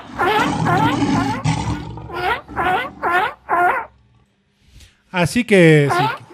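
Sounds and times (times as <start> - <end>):
seal calling with harsh harmonic barks, groans and howls: 0.0 - 4.2, 5.8 - 6.3.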